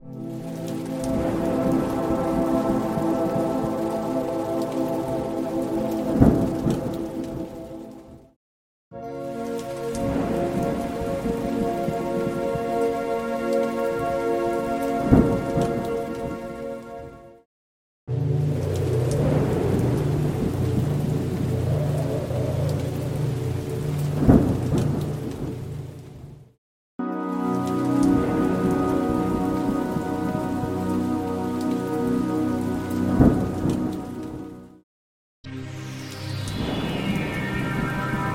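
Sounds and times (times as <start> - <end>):
ambient pad: 0.0 - 8.2, 9.0 - 17.2, 18.1 - 26.1, 27.0 - 34.7, 35.5 - 38.3.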